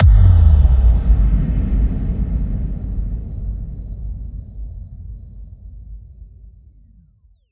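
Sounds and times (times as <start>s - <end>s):
huge speaker exploding impact kick hit: 0.0s - 5.2s.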